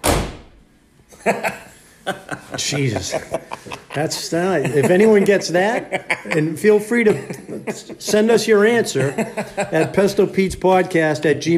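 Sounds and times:
vehicle door slamming shut: 0.0s - 0.6s
laughter: 1.1s - 10.5s
speech: 1.2s - 11.5s.

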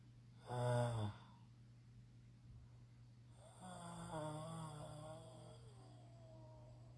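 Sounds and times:
person snoring while dozing: 0.4s - 1.3s, 3.4s - 6.9s.

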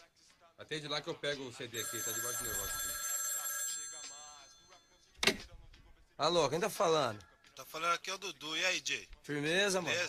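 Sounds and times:
speech: 0.6s - 3.0s, 6.2s - 10.0s
telephone bell ringing: 1.7s - 5.1s.

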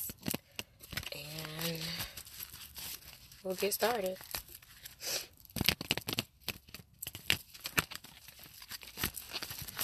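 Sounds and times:
deck of tarot cards being shuffled: 0.0s - 9.8s
speech: 3.4s - 4.3s.

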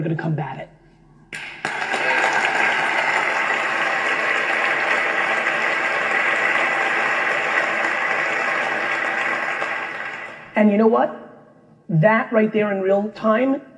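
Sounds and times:
speech: 0.0s - 0.8s, 10.6s - 11.3s, 11.9s - 13.7s
audience applause: 1.4s - 10.6s.

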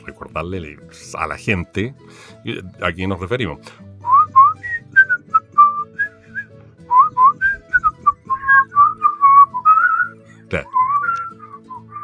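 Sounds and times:
speech: 0.0s - 3.9s, 10.5s - 10.8s
person whistling a melodic tune: 4.0s - 12.0s.

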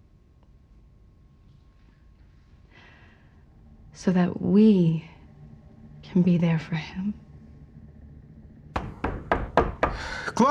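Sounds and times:
speech: 4.0s - 5.2s, 6.2s - 7.2s
firm knocking on a door: 8.8s - 10.1s.

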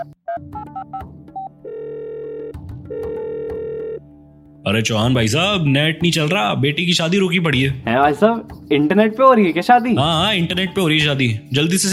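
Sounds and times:
phone dialing beeps for a call to the wifi provider: 0.0s - 4.0s
steady electronic phone ringback tone: 0.0s - 4.0s
speech: 4.7s - 11.9s.

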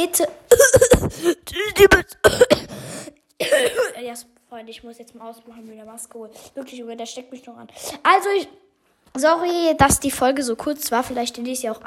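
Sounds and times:
speech: 0.0s - 2.5s, 3.5s - 11.8s
harsh coughing: 0.5s - 4.0s.

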